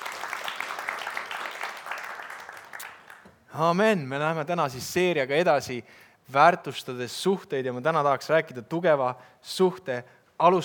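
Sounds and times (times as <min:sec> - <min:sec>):
room full of people applauding: 0:00.0 - 0:03.2
speech: 0:03.6 - 0:10.6.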